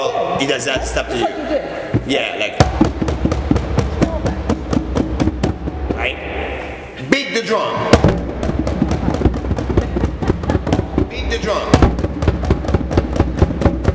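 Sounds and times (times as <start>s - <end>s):
speech: 0.0s - 3.4s, 11.4s - 11.7s
bass drum booming thumps: 1.9s - 6.2s, 7.8s - 13.9s.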